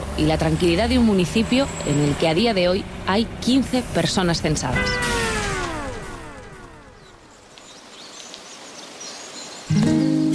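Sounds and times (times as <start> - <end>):
speech: 0.2 - 5.2
faint scattered birdsong of dozens of birds in a small Spanish municipality: 0.5 - 10.3
loud steady tone: 3.7 - 7.3.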